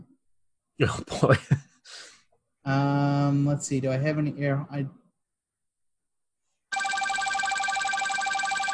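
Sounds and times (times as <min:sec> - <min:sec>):
speech: 0:00.8 - 0:01.6, 0:02.7 - 0:05.0
laughter: 0:01.1 - 0:01.6
electronic office phone ringing: 0:06.7 - 0:08.7.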